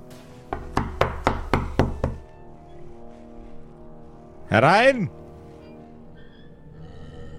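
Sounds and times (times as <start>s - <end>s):
sharp knocks on a door: 0.5s - 2.2s
speech: 4.5s - 5.2s.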